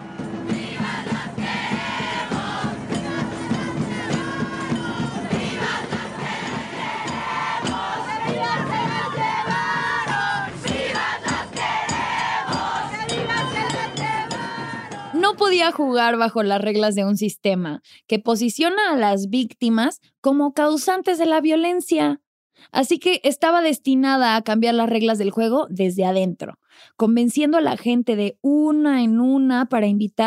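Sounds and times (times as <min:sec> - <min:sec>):
large crowd of protesters shouting and chanting slogans during a march: 0:00.0 - 0:15.2
speech: 0:15.4 - 0:30.2.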